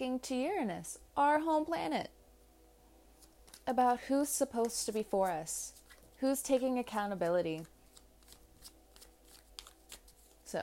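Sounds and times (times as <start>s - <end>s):
speech: 0.0s - 2.2s, 3.7s - 7.7s
low steady hum: 0.0s - 10.6s
tarot cards being shuffled: 3.2s - 4.0s, 4.6s - 10.6s.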